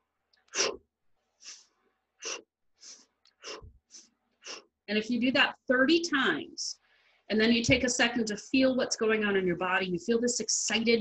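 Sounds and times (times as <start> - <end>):
forceful breaths pushed out with the fists in a dragon breath exercise: 1.4 - 4.7
speech: 4.9 - 11.0.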